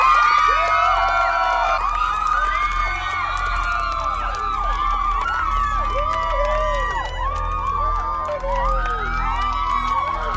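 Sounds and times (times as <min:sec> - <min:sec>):
large excited crowd cheering and shouting: 0:00.0 - 0:10.3.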